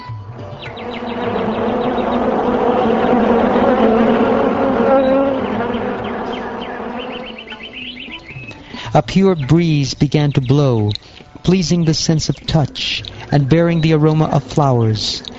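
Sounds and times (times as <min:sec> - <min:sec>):
dense swarm of bees buzzing: 0:00.4 - 0:08.4
speech: 0:09.0 - 0:15.3.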